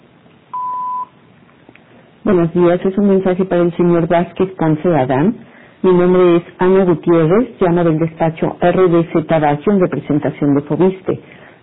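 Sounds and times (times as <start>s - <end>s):
faint phone-line hiss: 0.0s - 2.7s
single steady mid-pitched voicemail beep tone: 0.5s - 1.2s
speech: 2.2s - 11.6s.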